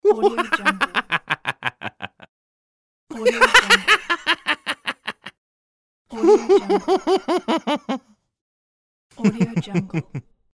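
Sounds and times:
man laughing crazily: 0.1s - 2.3s, 3.2s - 5.3s, 6.2s - 8.1s.

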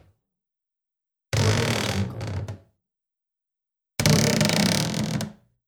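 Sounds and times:
old wooden closet door squeaking: 1.4s - 2.6s, 4.0s - 5.3s.

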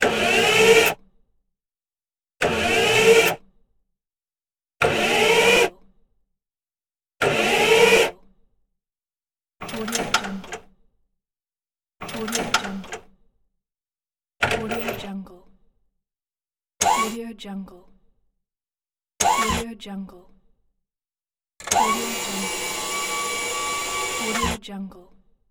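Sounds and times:
robot mechanism: 0.0s - 1.0s, 2.4s - 3.4s, 4.8s - 5.7s, 7.2s - 8.1s, 9.6s - 10.6s, 12.0s - 13.0s, 16.8s - 17.2s, 19.2s - 19.7s, 21.6s - 24.6s.

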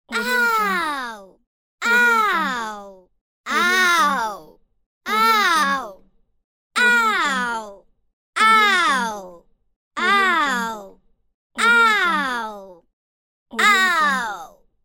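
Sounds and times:
cartoon girl screeches: 0.1s - 4.5s, 5.1s - 6.0s, 6.8s - 7.8s, 8.4s - 9.4s, 10.0s - 10.9s, 11.6s - 12.8s, 13.6s - 14.6s.

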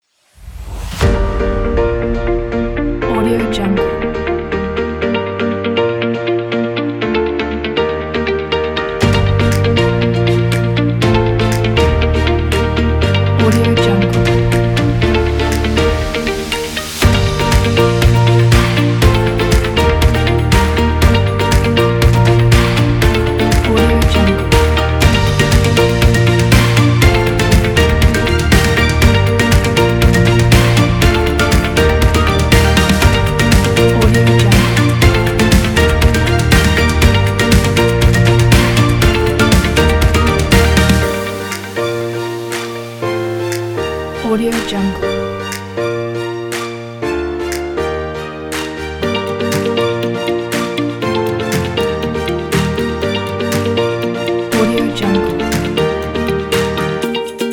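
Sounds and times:
uplifting inspirational corporate music: 0.6s - 57.5s.

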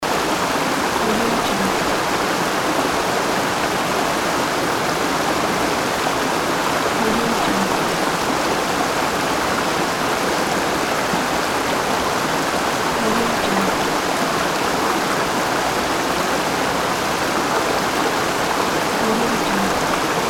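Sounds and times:
waterfall: 0.0s - 20.2s.

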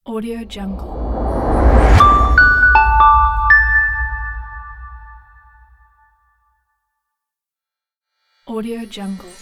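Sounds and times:
corporate cinematic logo music: 0.3s - 5.5s.

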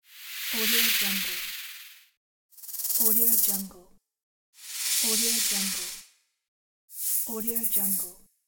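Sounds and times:
shaker hiss: 0.1s - 2.0s, 2.6s - 3.7s, 4.6s - 6.0s, 6.9s - 8.1s.

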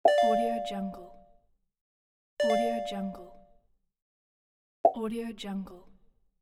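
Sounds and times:
pop ding notification sound: 0.1s - 1.2s, 2.4s - 3.2s.

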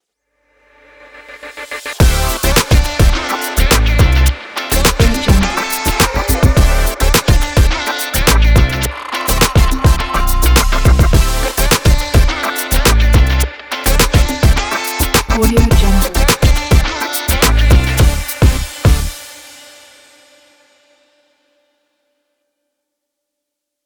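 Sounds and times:
funky show opener logo jingle: 2.0s - 19.2s.

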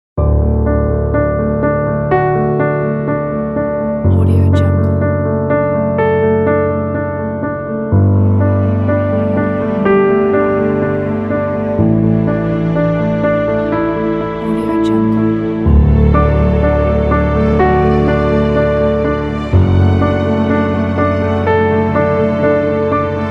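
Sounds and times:
uplifting emotional piano: 0.2s - 23.2s.

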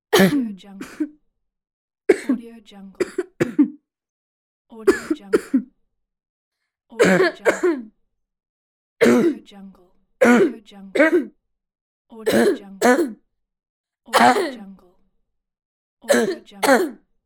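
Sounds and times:
boy coughing: 0.1s - 1.1s, 2.1s - 2.4s, 3.0s - 3.8s, 4.8s - 5.6s, 7.0s - 7.8s, 9.0s - 9.4s, 10.2s - 11.3s, 12.3s - 13.2s, 14.2s - 14.6s, 16.1s - 17.0s.

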